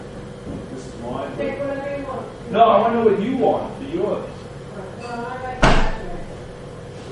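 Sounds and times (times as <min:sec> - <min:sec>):
speech: 0:01.0 - 0:04.4
fridge door closing with a muffled thump: 0:05.6 - 0:06.3.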